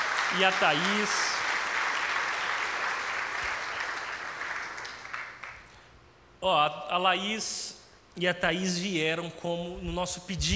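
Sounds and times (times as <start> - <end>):
audience applause: 0.0 - 5.7
speech: 0.3 - 1.3, 6.4 - 10.5.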